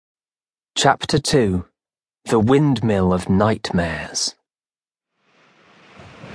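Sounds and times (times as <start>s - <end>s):
speech: 0.8s - 4.4s
sea waves crashing: 5.2s - 6.3s.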